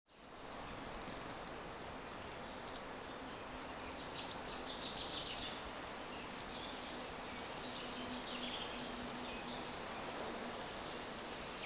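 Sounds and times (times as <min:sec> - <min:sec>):
faint birdsong: 0:00.1 - 0:11.6
European robin Erithacus rubecula ticking calls: 0:00.6 - 0:01.0, 0:03.0 - 0:03.4, 0:05.2 - 0:08.8, 0:10.0 - 0:10.8.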